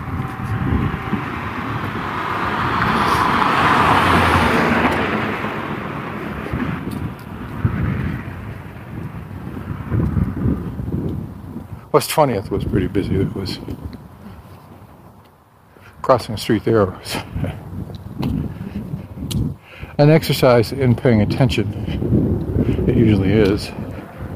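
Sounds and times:
car passing by on a quiet street: 0.0s - 10.6s, 22.5s - 24.3s
speech: 12.0s - 13.9s, 16.1s - 17.6s, 20.0s - 22.3s, 22.9s - 23.8s.

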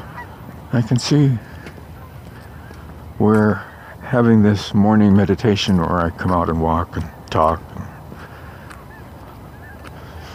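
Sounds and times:
geese honking: 0.0s - 10.3s
quiet outdoor hiss: 0.0s - 10.3s
speech: 0.7s - 1.5s, 3.2s - 7.7s.

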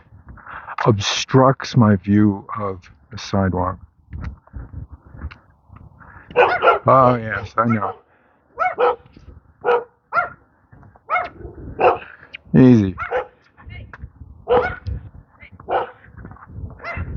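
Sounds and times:
speech: 0.8s - 4.4s, 6.3s - 8.0s, 12.5s - 13.1s
dogs barking in loud yaps: 6.3s - 12.3s, 12.9s - 13.5s, 14.4s - 14.9s, 15.6s - 16.1s, 16.8s - 17.1s.

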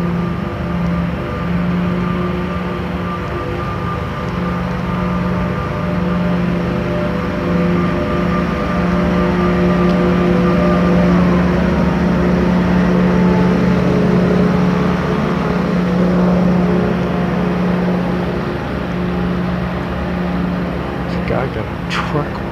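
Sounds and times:
large leaf vacuum machine engine droning: 0.0s - 22.5s.

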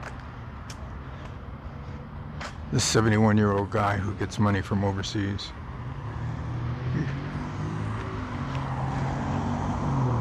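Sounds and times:
morning car traffic on a road: 0.0s - 10.2s
speech: 2.7s - 5.6s.

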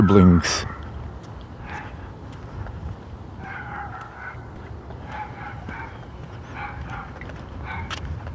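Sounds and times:
speech: 0.0s - 0.8s
small yappy dog barking: 1.6s - 2.0s, 3.4s - 8.0s.

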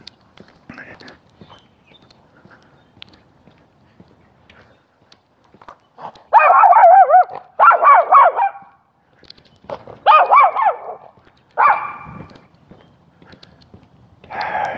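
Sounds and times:
small dogs yapping: 6.3s - 8.7s, 10.0s - 12.3s.

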